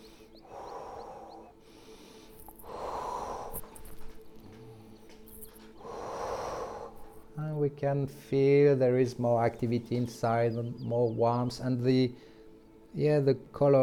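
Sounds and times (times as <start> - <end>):
forceful breathy exhalations blowing out through the mouth: 0.0 - 7.4
quiet breaths: 0.0 - 10.9, 11.8 - 13.2
speech: 7.7 - 12.3, 13.0 - 13.8.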